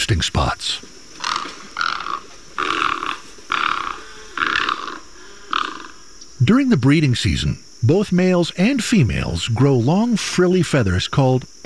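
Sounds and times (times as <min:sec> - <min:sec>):
speech: 0:00.0 - 0:00.9, 0:06.5 - 0:11.6
great egret hoarse grating croaks: 0:01.2 - 0:06.1.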